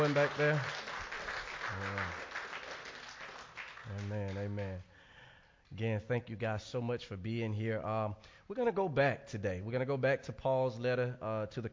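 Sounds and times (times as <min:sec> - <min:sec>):
speech: 0:00.0 - 0:00.8, 0:01.7 - 0:02.3, 0:03.8 - 0:04.9, 0:05.7 - 0:11.7
church congregation clapping in praise: 0:00.0 - 0:04.9.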